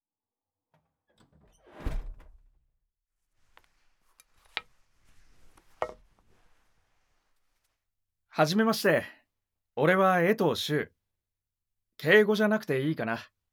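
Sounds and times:
door unlocked and sliding open: 0:01.1 - 0:02.6
shuffling: 0:03.3 - 0:07.8
speech: 0:08.4 - 0:09.2, 0:09.8 - 0:11.0, 0:12.0 - 0:13.4.

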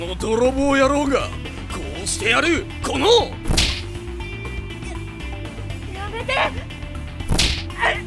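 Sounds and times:
speech: 0:00.2 - 0:01.5, 0:02.1 - 0:03.5, 0:06.2 - 0:06.7
boy being punched and kicked by a shopkeeper in front of a shop: 0:03.5 - 0:03.9, 0:07.3 - 0:07.9.

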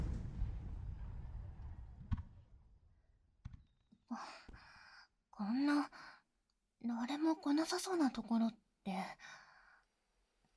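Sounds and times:
fireworks thudding and rumbling: 0:00.0 - 0:02.4
speech: 0:04.1 - 0:04.5, 0:05.4 - 0:06.2, 0:06.8 - 0:09.4.

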